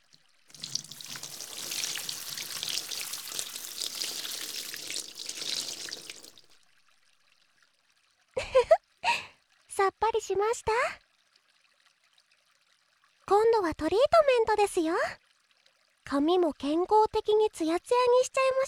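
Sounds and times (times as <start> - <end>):
warm water running as hair is rinsed: 0.0 - 6.7
speech: 10.3 - 11.0, 13.6 - 15.2, 16.1 - 18.6.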